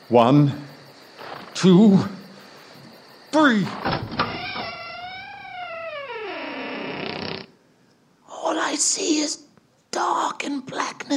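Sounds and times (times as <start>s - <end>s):
speech: 0.1s - 0.6s, 1.6s - 2.2s, 3.3s - 4.0s, 8.8s - 9.4s, 10.0s - 11.1s
door creaking open: 1.2s - 1.7s, 3.4s - 7.5s.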